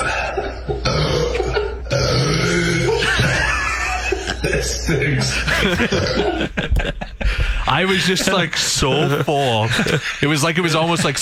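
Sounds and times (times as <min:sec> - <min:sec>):
laughter: 0:00.0 - 0:01.9, 0:02.6 - 0:10.4
loud rumbling burp: 0:00.8 - 0:03.4
speech: 0:04.9 - 0:11.1.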